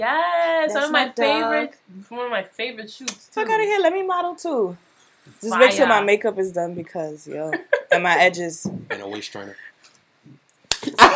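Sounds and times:
speech: 0:00.0 - 0:11.1
woman's hand slapping the back of a man's neck: 0:10.7 - 0:11.1.

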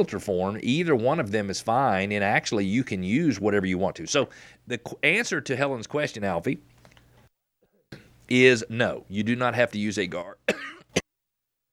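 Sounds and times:
speech: 0:00.0 - 0:06.7, 0:08.3 - 0:10.7
harsh hacking cough: 0:10.4 - 0:11.1.

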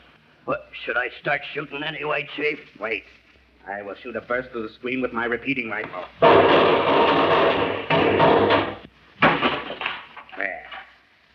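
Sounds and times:
speech: 0:00.4 - 0:08.6
folding screen toppling over with a clattering crash: 0:06.2 - 0:10.9.

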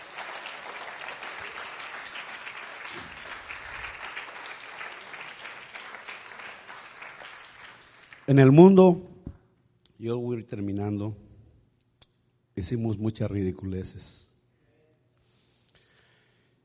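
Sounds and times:
large church audience applauding loudly: 0:00.0 - 0:08.8
speech: 0:08.3 - 0:09.1, 0:10.0 - 0:11.3, 0:12.6 - 0:14.3.

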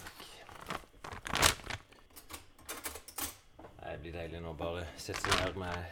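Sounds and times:
chocolate wrapper being torn open: 0:00.0 - 0:02.0, 0:05.1 - 0:05.8
chocolate wrapper crinkling: 0:00.0 - 0:02.5, 0:05.0 - 0:05.9
speech: 0:04.2 - 0:05.9.

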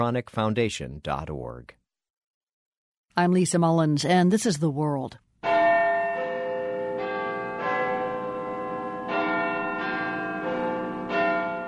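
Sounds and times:
speech: 0:00.0 - 0:01.8, 0:03.2 - 0:05.2
clock tower bell chiming a melodic sequence: 0:05.4 - 0:11.6.

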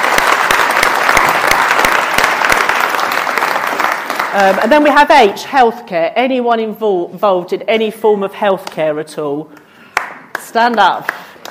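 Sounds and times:
audience applause: 0:00.0 - 0:04.8
speech: 0:04.4 - 0:09.6, 0:10.5 - 0:11.2.

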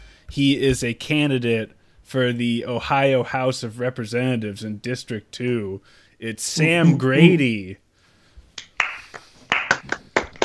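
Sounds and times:
speech: 0:00.3 - 0:07.8
hand clapping: 0:08.6 - 0:10.4.

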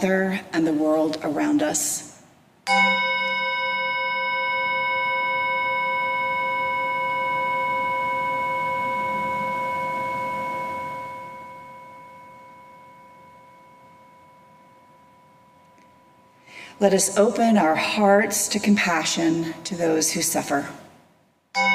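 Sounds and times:
speech: 0:00.0 - 0:02.1, 0:02.7 - 0:03.5, 0:16.8 - 0:20.8
single chime struck and ringing: 0:02.7 - 0:16.8.

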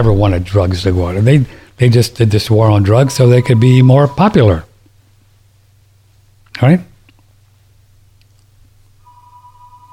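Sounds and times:
speech: 0:00.0 - 0:04.7, 0:06.6 - 0:06.9
landline telephone ringing downstairs: 0:02.9 - 0:04.6, 0:09.0 - 0:09.9.

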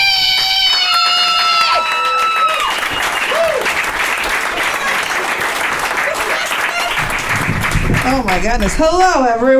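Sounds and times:
high whoops and cheers: 0:00.0 - 0:03.8
crowd applauding: 0:00.0 - 0:09.1
speech: 0:08.2 - 0:09.5.

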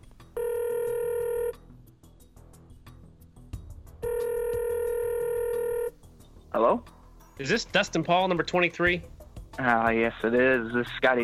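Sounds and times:
telephone ringback tone while dialing out: 0:00.4 - 0:01.6, 0:04.0 - 0:06.0
speech: 0:06.6 - 0:11.2.

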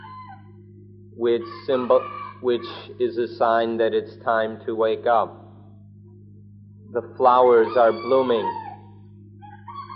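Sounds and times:
rooster crowing: 0:00.0 - 0:00.5, 0:01.3 - 0:02.9, 0:07.2 - 0:09.9
steady low hum: 0:00.0 - 0:09.9
speech: 0:01.2 - 0:05.4, 0:06.9 - 0:08.6.

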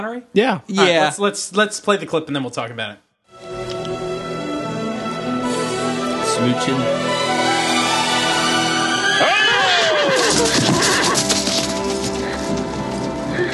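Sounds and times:
speech: 0:00.0 - 0:03.0, 0:06.4 - 0:07.0
film soundtrack noise and music: 0:03.3 - 0:13.5
horse whinnying as it jumps over: 0:08.1 - 0:11.8.

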